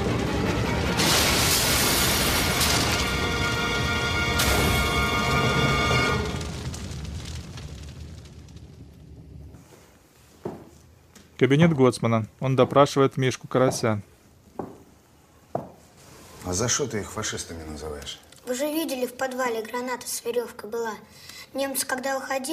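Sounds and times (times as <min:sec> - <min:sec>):
truck crashing with metallic impacts tumbling off a cliff: 0:00.0 - 0:10.1
heavy rumble of a truck explosion: 0:00.0 - 0:10.3
speech: 0:11.4 - 0:14.1, 0:16.5 - 0:22.5.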